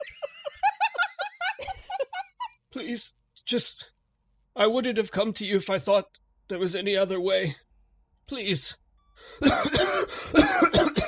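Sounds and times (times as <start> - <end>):
laughter: 0.0 - 2.6
speech: 2.8 - 3.9, 4.6 - 7.6, 8.3 - 10.9
raspy throaty breaths: 9.1 - 10.4
person coughing harshly: 9.4 - 11.0.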